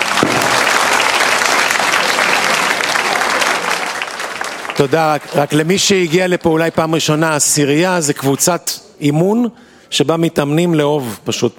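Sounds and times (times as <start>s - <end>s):
crowd applauding: 0.0s - 7.0s
speech: 4.8s - 11.5s.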